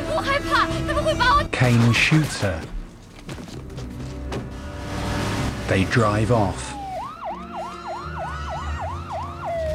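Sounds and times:
speech: 0.2 - 2.8, 5.7 - 6.7
police car siren wailing in yelping sweeps: 6.5 - 9.7.

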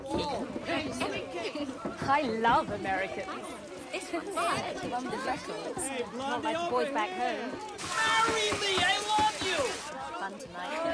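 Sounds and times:
excited crowd of soldiers chattering at an army camp: 0.0 - 10.9
speech: 2.1 - 10.9
louder shouts from a crowd of soldiers: 7.8 - 9.9.

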